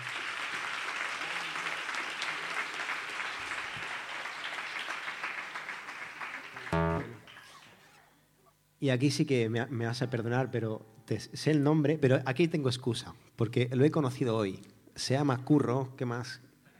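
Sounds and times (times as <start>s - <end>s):
crowd applause: 0.0s - 7.3s
short louder tonal burst: 6.8s - 7.3s
speech: 8.8s - 16.5s.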